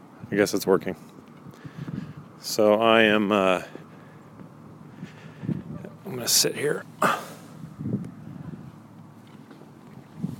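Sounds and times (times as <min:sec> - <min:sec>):
speech: 0:00.3 - 0:01.2, 0:02.4 - 0:03.8, 0:06.2 - 0:07.3
wind buffeting the microphone on a dock by a lake: 0:01.4 - 0:02.4, 0:04.7 - 0:06.3, 0:07.5 - 0:10.3.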